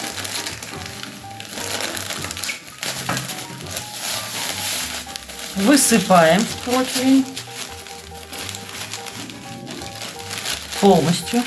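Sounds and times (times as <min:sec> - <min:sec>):
plastic bag of salt torn open and crinkling: 0:00.0 - 0:11.4
salt crunching on a baking tray: 0:00.0 - 0:11.4
speech: 0:05.6 - 0:07.4, 0:10.8 - 0:11.4.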